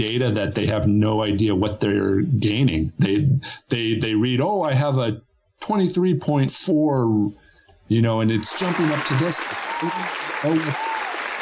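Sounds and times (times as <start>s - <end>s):
speech: 0.0s - 10.9s
applause sound effect: 8.4s - 11.4s.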